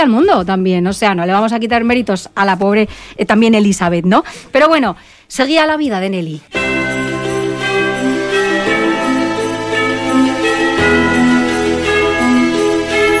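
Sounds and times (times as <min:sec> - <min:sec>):
speech: 0:00.0 - 0:06.7
wedding bells pealing: 0:06.6 - 0:13.1.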